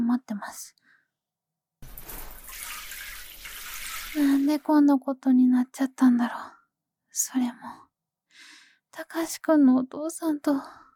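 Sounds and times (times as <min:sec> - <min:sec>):
speech: 0:00.1 - 0:00.8, 0:04.1 - 0:06.6, 0:07.2 - 0:07.8, 0:08.4 - 0:10.8
shower water spraying: 0:01.8 - 0:04.6.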